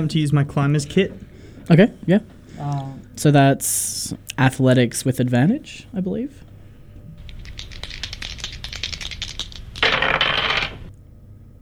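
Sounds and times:
speech: 0.0s - 6.4s
dice rolling off a desk: 8.4s - 10.9s.

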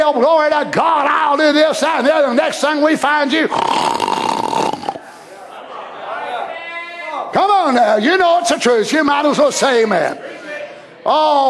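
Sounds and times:
speech: 0.1s - 4.0s, 7.3s - 10.4s, 11.1s - 11.4s
man's voice imitating snoring: 3.4s - 5.1s.

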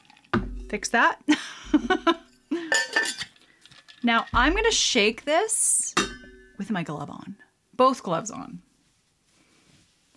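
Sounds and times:
ice cubes tumbling into a metal cocktail shaker: 0.0s - 0.4s, 2.8s - 5.1s
speech: 0.7s - 2.2s, 4.0s - 5.8s, 6.6s - 8.6s
bright metallic ring of cocktail shaker: 6.0s - 6.6s.

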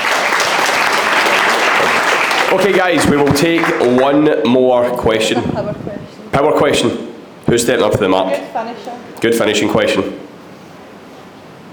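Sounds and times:
audience applause: 0.0s - 4.3s
speech: 2.5s - 10.2s.

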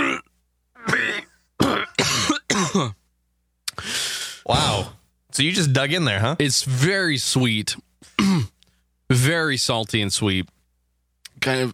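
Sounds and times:
person coughing and choking on food: 0.0s - 3.0s, 8.0s - 8.6s
speech: 5.4s - 7.9s, 9.2s - 10.6s, 11.4s - 11.7s.

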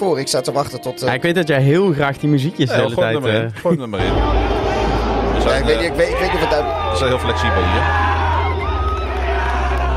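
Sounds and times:
speech: 0.0s - 4.6s, 5.4s - 8.1s
crowd of people around a woman yelling and cheering: 4.0s - 9.9s
steady low rumble: 4.0s - 9.9s.

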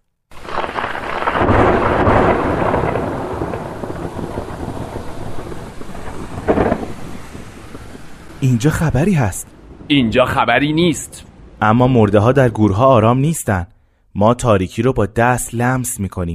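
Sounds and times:
deep rolling rumble of thunder: 0.3s - 13.3s
steady rain hissing: 0.3s - 13.6s
speech: 8.4s - 16.3s.

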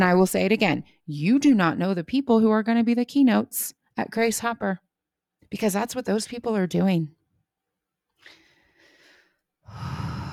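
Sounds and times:
speech: 0.0s - 4.8s, 5.5s - 7.2s
deep breath: 8.2s - 10.3s.

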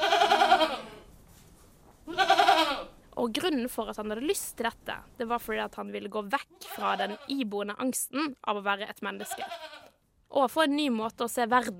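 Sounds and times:
loud nasal goat bleats: 0.0s - 1.1s, 2.1s - 3.0s, 6.5s - 7.4s, 9.1s - 10.0s
speech: 3.2s - 11.7s.

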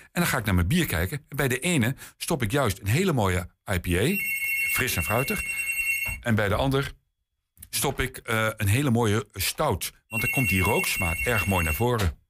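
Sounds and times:
speech: 0.1s - 5.6s, 6.2s - 7.0s, 7.7s - 12.2s
telephone or doorbell ringing in electronic tones: 4.2s - 6.3s, 10.1s - 12.2s.

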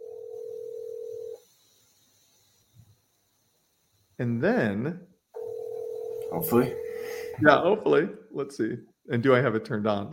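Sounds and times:
outgoing phone call electronic ringback tone: 0.0s - 1.4s, 5.4s - 7.4s
quiet hum: 0.0s - 10.1s
speech: 4.2s - 5.1s, 6.3s - 10.1s.

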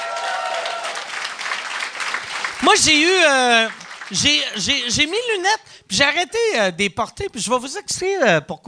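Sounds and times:
audience applauding: 0.0s - 4.6s
speech: 2.6s - 8.6s.

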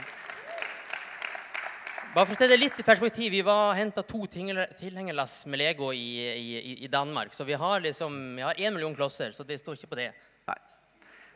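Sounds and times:
one person clapping hands: 0.0s - 3.2s
speech: 2.1s - 10.7s.

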